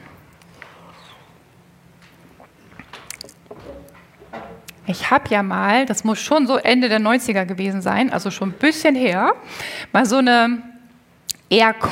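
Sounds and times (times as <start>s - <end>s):
person sipping and swallowing water: 2.2s - 4.0s
soft mouth clicks: 2.4s - 3.4s, 11.2s - 11.5s
speech: 4.9s - 10.7s, 11.5s - 11.8s.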